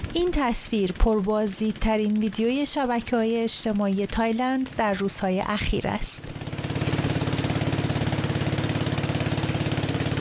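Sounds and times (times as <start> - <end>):
small boat motor running on a river in Thailand: 0.0 - 10.2
speech: 0.2 - 6.4.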